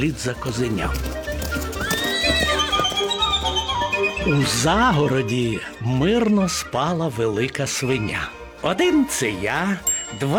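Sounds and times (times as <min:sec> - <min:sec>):
speech: 0:00.0 - 0:01.7, 0:04.2 - 0:10.3
horse neighing: 0:00.9 - 0:05.2.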